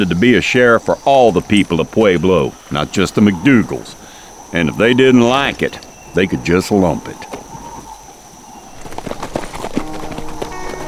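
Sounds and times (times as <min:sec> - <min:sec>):
speech: 0:00.0 - 0:07.4
horses' hooves clip-clopping through knee-deep snow on a mountain slope: 0:07.2 - 0:10.8.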